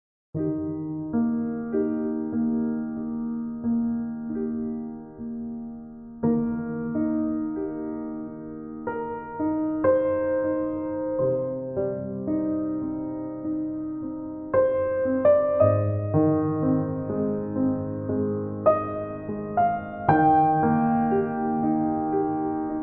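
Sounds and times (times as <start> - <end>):
classical piano music: 0.4 - 22.8.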